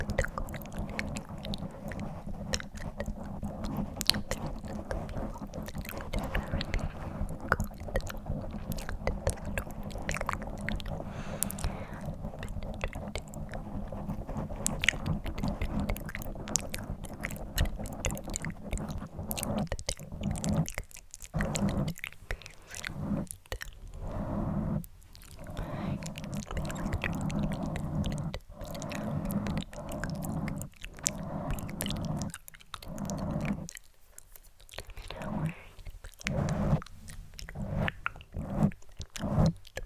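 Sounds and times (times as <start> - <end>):
dense scratching against a microphone: 0.0 - 39.8
faint low hum: 0.0 - 39.8.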